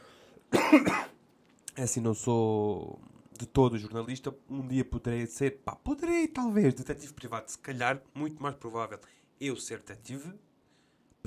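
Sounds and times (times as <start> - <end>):
person coughing harshly: 0.5 - 1.2
speech: 0.7 - 1.1, 1.8 - 10.5.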